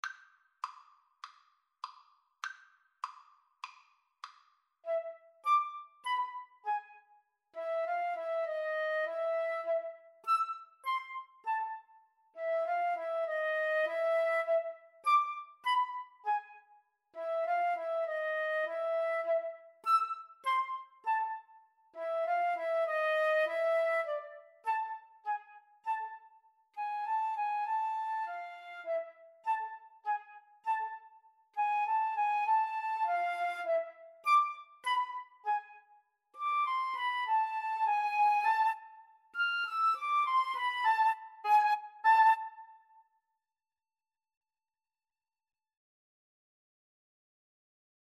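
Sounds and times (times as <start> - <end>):
flute duet playing a tango: 4.8 - 43.1.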